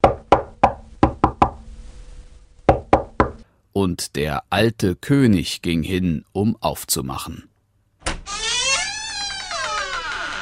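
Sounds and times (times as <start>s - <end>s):
loud knocking on a heavy wooden city gate: 0.0s - 1.6s, 2.7s - 3.4s
speech: 3.8s - 7.5s.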